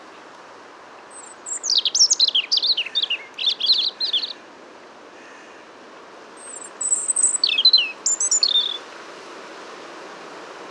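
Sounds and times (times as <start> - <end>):
European robin singing rapid, high, jumbled twittering notes: 1.2 - 4.3, 6.5 - 8.8.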